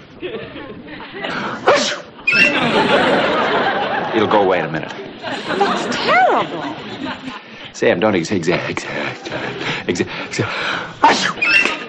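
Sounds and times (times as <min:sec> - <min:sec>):
laughter: 0:00.1 - 0:07.7, 0:08.3 - 0:11.8
speech: 0:00.2 - 0:02.4, 0:04.2 - 0:11.5
person sneezing: 0:01.3 - 0:02.1, 0:11.0 - 0:11.5.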